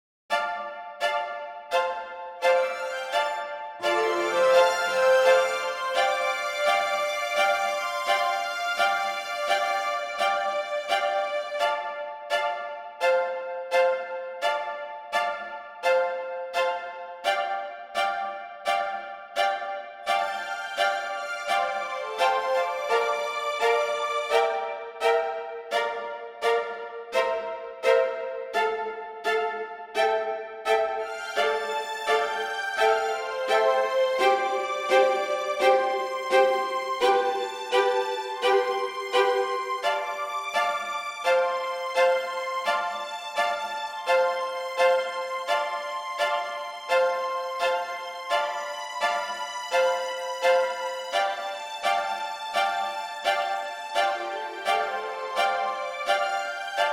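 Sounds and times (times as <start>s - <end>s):
strings playing: 0.3s - 56.9s.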